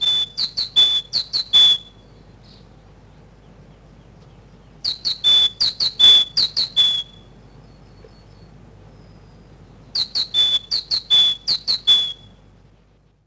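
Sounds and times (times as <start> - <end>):
great tit song of rhythmic two-note whistles in spring: 0.0 - 2.0, 4.8 - 7.3, 10.0 - 12.4.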